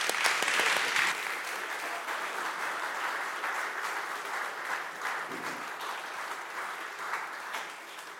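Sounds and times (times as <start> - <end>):
audience applause: 0.0 - 8.1.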